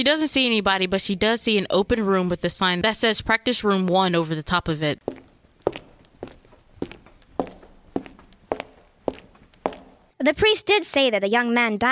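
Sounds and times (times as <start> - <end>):
speech: 0.0 - 5.8, 10.2 - 11.8
footsteps walking into a building: 5.0 - 10.2.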